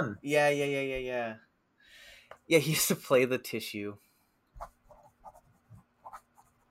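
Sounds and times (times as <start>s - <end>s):
speech: 0.0s - 1.5s, 2.5s - 4.7s
pen scratching across paper writing notes: 4.6s - 6.6s.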